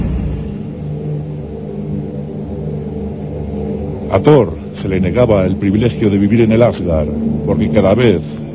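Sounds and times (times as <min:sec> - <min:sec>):
deep sustained thunder rumbling: 0:00.0 - 0:01.3
speech: 0:04.1 - 0:08.4.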